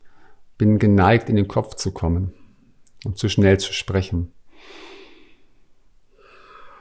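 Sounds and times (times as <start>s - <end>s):
deep breath drawn in and released: 0.0s - 0.5s, 4.5s - 6.7s
speech: 0.6s - 2.4s, 3.0s - 4.9s.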